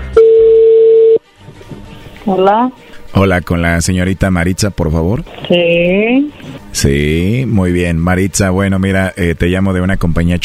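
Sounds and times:
telephone line tone while a number is dialed: 0.1 - 1.2
speech: 2.3 - 10.4.

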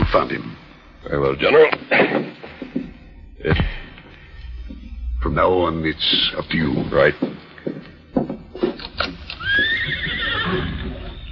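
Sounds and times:
speech: 0.1 - 2.4, 3.4 - 3.8, 5.2 - 7.4
horse hooves stamping and shuffling: 1.6 - 11.3
impatient horse giving a drawn-out wavering whinny: 9.3 - 11.3.

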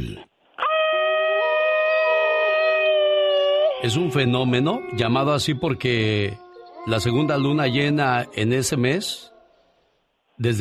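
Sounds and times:
coyote howling: 0.6 - 9.6
speech: 3.8 - 9.3, 10.4 - 10.5.

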